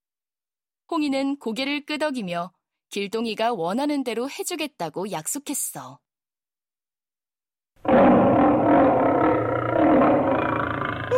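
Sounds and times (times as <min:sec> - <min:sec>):
speech: 0:00.9 - 0:06.0
tiger's deep rumbling roar: 0:07.8 - 0:11.1.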